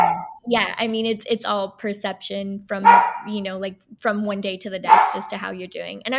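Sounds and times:
dog barking: 0.0 - 0.4, 2.8 - 3.3, 4.9 - 5.3
speech: 0.5 - 6.1.

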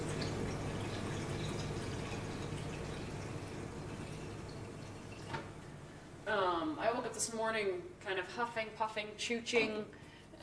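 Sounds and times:
water running from a tap into a glass: 0.0 - 5.7
speech: 6.3 - 10.4.

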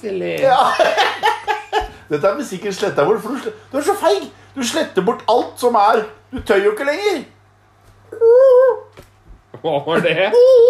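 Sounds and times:
speech: 0.0 - 1.3, 2.1 - 7.3, 9.6 - 10.6
laughter: 0.5 - 2.1
person imitating a peacock call: 8.1 - 8.9, 10.3 - 10.6.

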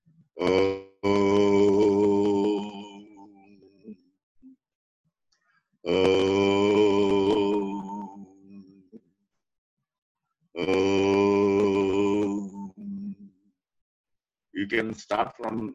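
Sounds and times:
person chanting Om: 0.4 - 3.2, 5.9 - 8.5, 10.6 - 13.2
speech: 14.8 - 15.7.

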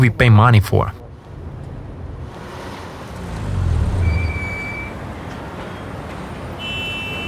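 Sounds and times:
cars idling in a traffic jam: 1.1 - 6.6.

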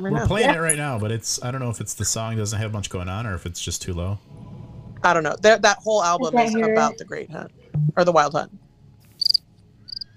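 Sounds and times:
speech: 0.0 - 4.4, 5.0 - 8.6
low quiet hum: 0.0 - 10.1
cricket chirping: 9.2 - 10.1.

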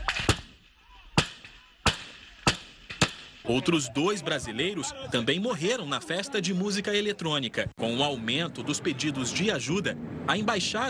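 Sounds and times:
gunshots fired at portable toilets: 0.0 - 3.5
speech: 3.5 - 10.8.

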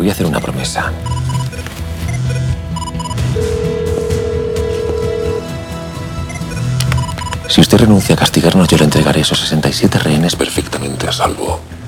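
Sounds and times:
speech: 0.1 - 1.4, 7.8 - 11.7
mobile phone ringing with an electronic ringtone: 1.0 - 5.6, 6.2 - 7.5.

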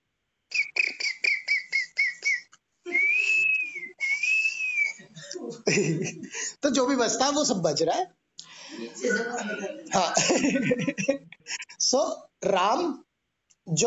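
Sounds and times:
short rhythmic whistled chirps in a jungle ambience effect: 0.5 - 5.0
laughter: 4.8 - 6.6, 8.7 - 11.8
speech: 5.7 - 8.2, 8.8 - 13.0, 13.7 - 13.8.

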